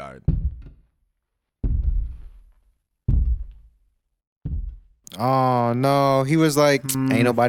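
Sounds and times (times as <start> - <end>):
speech: 0.1 - 0.3, 5.2 - 7.4
heavy video game footsteps walking away: 0.3 - 0.9, 1.6 - 3.8, 4.4 - 5.0.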